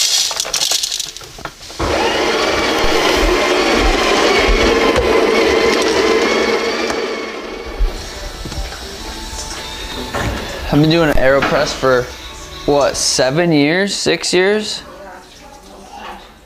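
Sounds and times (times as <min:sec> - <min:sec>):
electric coffee grinder grinding roasted coffee beans: 0:01.8 - 0:07.8
speech: 0:10.8 - 0:14.9.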